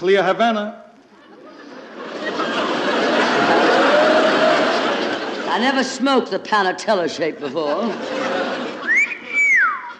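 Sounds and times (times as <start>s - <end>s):
speech: 0.0s - 0.8s, 5.6s - 8.4s
laughter: 1.0s - 6.4s, 7.0s - 9.9s
sailor whistling for a cab: 8.8s - 9.9s.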